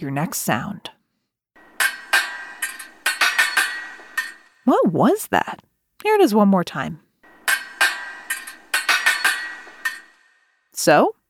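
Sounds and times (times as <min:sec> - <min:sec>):
speech: 0:00.0 - 0:01.0, 0:04.7 - 0:07.0, 0:10.8 - 0:11.2
fencing swords clashing in a sword-fighting bout: 0:01.6 - 0:04.6, 0:07.2 - 0:10.4.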